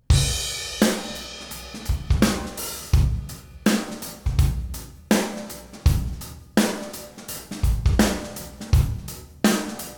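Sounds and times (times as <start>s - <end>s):
solo acoustic drum groove: 0.0s - 9.9s.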